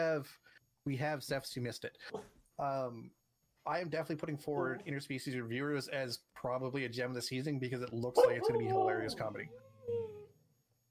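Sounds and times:
speech: 0.0 - 9.7
dog whining: 8.0 - 10.4.

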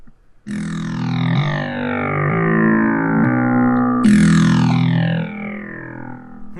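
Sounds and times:
harsh abrasive FM synthesizer tone droning: 0.5 - 6.5.

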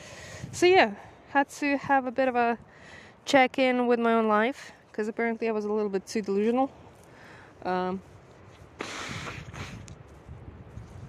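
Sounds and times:
speech: 0.6 - 6.8, 7.6 - 8.1
person sniffling outdoors in cold weather: 8.8 - 9.8.

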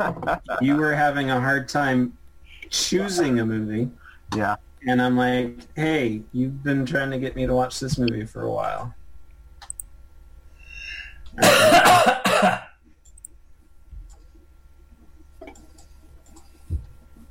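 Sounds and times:
speech: 0.0 - 9.0, 11.4 - 12.6
faint small clicks: 9.6 - 9.9
person coughing: 11.4 - 12.8.

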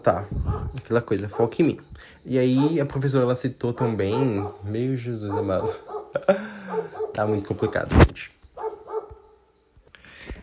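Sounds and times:
speech: 0.0 - 8.4
dog barking: 0.4 - 1.7, 2.5 - 3.0, 3.7 - 7.9, 8.6 - 9.4.

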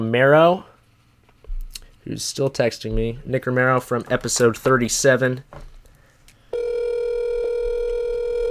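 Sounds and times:
speech: 0.0 - 0.7, 2.0 - 5.7
telephone line tone as a call is placed: 6.5 - 8.4.

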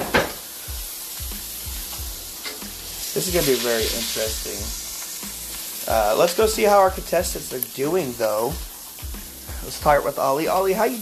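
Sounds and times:
meat frying in a pan: 0.0 - 10.9
speech: 3.2 - 4.8, 5.9 - 8.7, 9.6 - 10.9.

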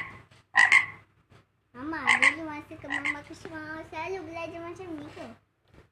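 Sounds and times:
frog croaking with raspy throaty calls: 0.0 - 1.1, 1.9 - 3.3
speech: 2.7 - 5.4.

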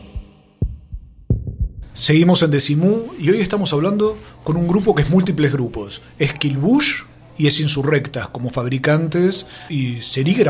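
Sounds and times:
heartbeat sound effect in radio jingle: 0.0 - 2.0
faint hum: 1.8 - 10.4
speech: 2.0 - 10.4.

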